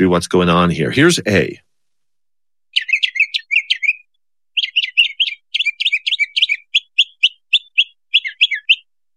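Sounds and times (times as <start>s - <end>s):
speech: 0.0s - 1.6s
older adult male northern mockingbird singing: 2.7s - 9.0s.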